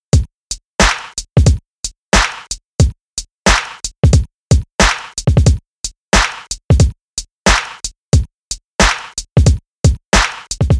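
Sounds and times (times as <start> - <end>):
stuttering kick drum: 0.0 - 0.3, 0.9 - 1.6, 2.8 - 5.6, 6.7 - 7.0, 9.3 - 10.7
septuplet swing rhythm: 0.0 - 10.7.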